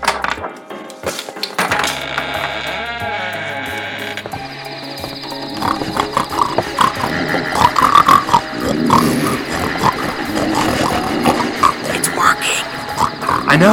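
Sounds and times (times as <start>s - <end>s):
squeals and bleating calls: 2.0s - 13.7s
people on all fours snorting and grunting imitating pigs: 5.3s - 13.7s.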